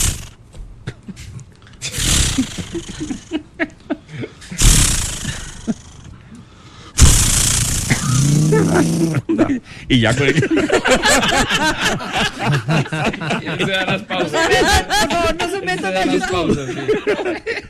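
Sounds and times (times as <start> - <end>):
voice imitating a chainsaw starting and cutting: 0.0 - 0.3, 1.9 - 3.2, 4.6 - 6.0, 7.0 - 9.3
laughter: 0.9 - 4.6, 8.4 - 17.6
speech: 2.8 - 3.7, 9.9 - 17.6.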